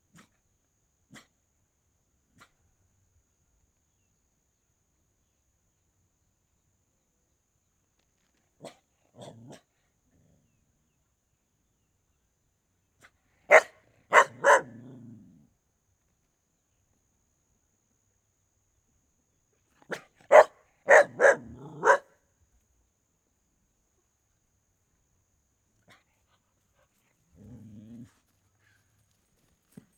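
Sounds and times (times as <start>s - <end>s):
dog barking: 13.5s - 14.9s, 19.9s - 22.1s
dog growling low: 14.6s - 15.5s, 21.2s - 22.0s, 27.3s - 28.2s.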